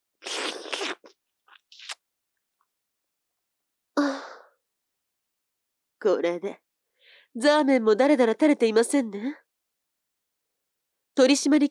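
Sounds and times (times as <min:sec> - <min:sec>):
wet slurping of liquid: 0:00.2 - 0:02.0
speech: 0:06.0 - 0:06.6, 0:07.3 - 0:09.4, 0:11.2 - 0:11.7.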